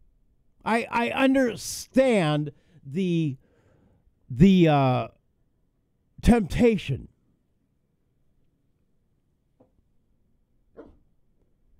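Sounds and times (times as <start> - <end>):
speech: 0.6 - 3.4, 4.3 - 5.2, 6.2 - 7.1
dog barking: 10.8 - 11.0.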